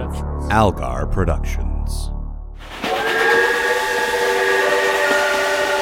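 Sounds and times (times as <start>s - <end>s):
speech: 0.1s - 2.0s
steam train whistle with multi-toned chord: 2.8s - 5.8s
hissing rumbling rail noise of steam train: 3.0s - 5.8s.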